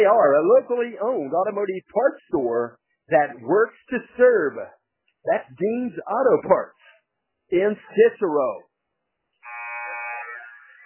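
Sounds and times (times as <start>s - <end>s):
speech: 0.0s - 6.8s, 7.5s - 8.7s
basketball court buzzer blaring during a game: 9.4s - 10.8s.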